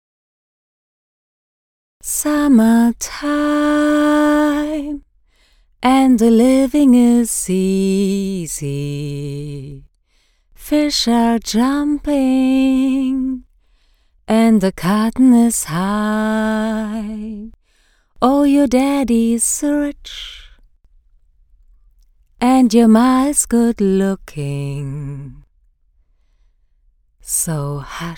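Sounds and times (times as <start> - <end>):
melancholic singing: 2.0 - 5.1, 5.8 - 9.9, 10.6 - 13.5, 14.3 - 17.6, 18.2 - 20.6, 22.4 - 25.5, 27.2 - 28.1.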